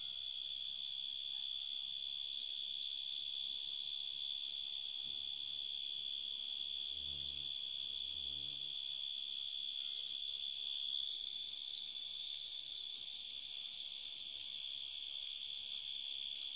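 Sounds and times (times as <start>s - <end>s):
cricket giving a continuous high shrill trill: 0.0s - 16.5s.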